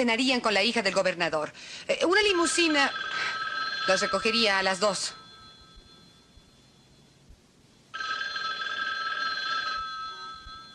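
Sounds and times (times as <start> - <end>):
speech: 0.0 - 5.2
telephone ringing with bright high-pitched tone: 2.0 - 7.2, 7.9 - 10.7.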